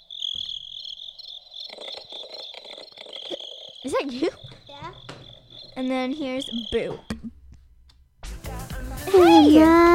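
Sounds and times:
high-pitched cricket chirping from a sound-maker toy: 0.0s - 7.2s
speech: 3.8s - 5.0s, 5.8s - 7.1s, 9.2s - 9.9s.

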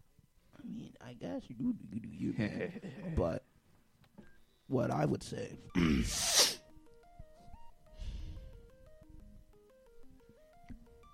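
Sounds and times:
speech: 1.0s - 3.5s, 4.7s - 6.3s
soft electronic melody of stepping tones: 4.2s - 11.1s
person sneezing: 5.8s - 6.6s.

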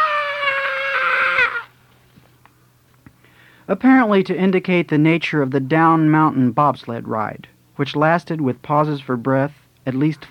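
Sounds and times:
man screaming: 0.0s - 1.7s
speech: 3.7s - 10.2s.

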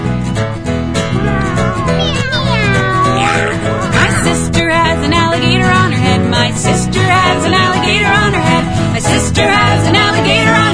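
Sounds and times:
loud steady musical backing: 0.0s - 10.7s
voice imitating a cat meowing: 1.1s - 4.4s.

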